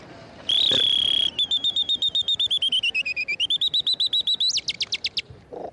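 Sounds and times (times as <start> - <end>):
bird whistle imitating canary song: 0.5 - 5.2.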